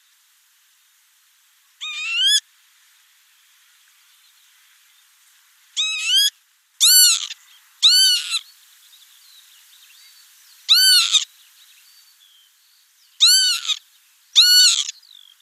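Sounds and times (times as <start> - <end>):
northern lapwing wheezy calls: 1.8 - 2.4, 5.8 - 8.4, 10.7 - 11.3, 13.2 - 13.8, 14.4 - 14.9.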